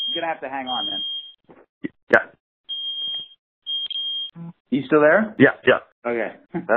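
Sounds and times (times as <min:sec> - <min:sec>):
smoke alarm high-pitched beeping: 0:00.0 - 0:01.4, 0:02.7 - 0:04.4
speech: 0:00.2 - 0:02.4, 0:04.4 - 0:06.7.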